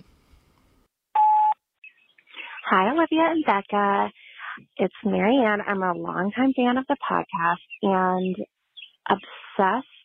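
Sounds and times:
loud electronic phone beep: 0:01.2 - 0:01.6
speech: 0:02.7 - 0:08.5, 0:09.1 - 0:10.0.

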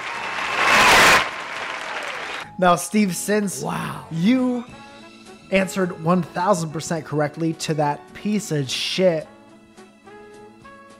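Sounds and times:
crowd cheering: 0:00.0 - 0:02.5
people clapping: 0:00.0 - 0:02.5
speech: 0:02.6 - 0:04.8, 0:05.5 - 0:09.4.

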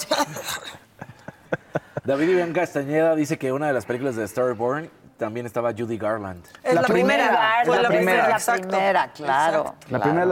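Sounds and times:
man coughing in another room: 0:00.0 - 0:01.0
speech: 0:02.1 - 0:10.3.

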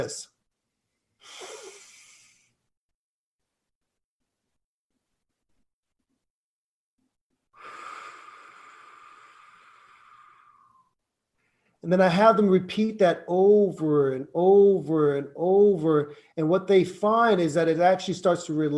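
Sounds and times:
speech: 0:00.0 - 0:00.3, 0:11.8 - 0:18.7
long steady exhale out through the mouth: 0:01.2 - 0:02.5, 0:07.6 - 0:10.9
short sharp inhale through the nose: 0:01.2 - 0:02.6, 0:07.6 - 0:11.7.

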